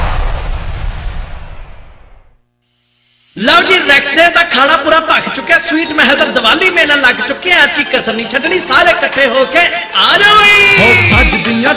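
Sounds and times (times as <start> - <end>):
big Diwali firecrackers exploding: 0.0 - 2.4
speech: 3.4 - 11.7.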